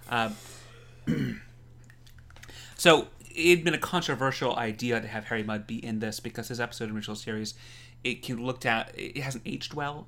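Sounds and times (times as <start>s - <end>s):
faint steady hum: 0.0s - 10.0s
speech: 0.1s - 1.2s, 2.8s - 10.0s
rough coughs: 1.1s - 1.5s.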